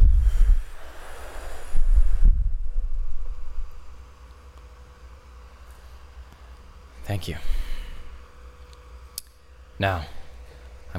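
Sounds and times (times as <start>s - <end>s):
group of people inhaling and exhaling together: 0.1s - 2.4s, 7.4s - 8.2s
speech: 7.1s - 7.6s, 9.8s - 10.2s.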